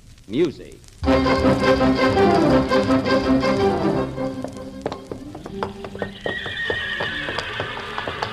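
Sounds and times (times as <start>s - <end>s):
faint hiss: 0.0s - 6.2s
speech: 0.3s - 4.5s
horse hooves clopping in a paddock: 1.1s - 8.3s
horses neighing in a paddock: 5.7s - 8.3s.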